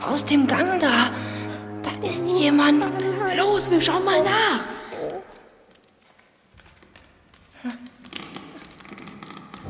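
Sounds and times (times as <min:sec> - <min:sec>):
speech: 0:00.0 - 0:01.4, 0:02.0 - 0:05.3, 0:07.6 - 0:07.9
footsteps along a corridor with bedrooms: 0:04.7 - 0:09.6.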